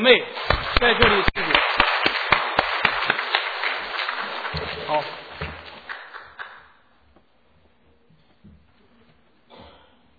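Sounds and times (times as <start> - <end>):
speech: 0.0 - 1.3
sharper louder claps: 0.0 - 6.8
church audience applauding: 0.0 - 6.9.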